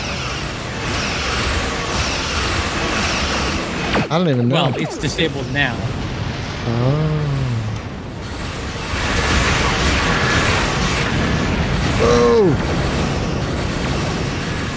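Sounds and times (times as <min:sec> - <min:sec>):
video game sci-fi starship explosions in a space battle: 0:00.0 - 0:14.7
whooshing descending electronic tone: 0:01.0 - 0:11.8
speech: 0:04.1 - 0:06.0, 0:06.6 - 0:07.1.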